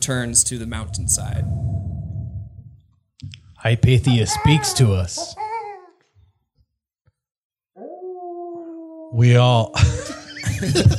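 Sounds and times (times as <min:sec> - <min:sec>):
speech: 0:00.0 - 0:01.7, 0:03.2 - 0:05.5, 0:09.1 - 0:10.9
wolves howling in long clear tones: 0:07.8 - 0:10.3
laughter: 0:09.7 - 0:10.9.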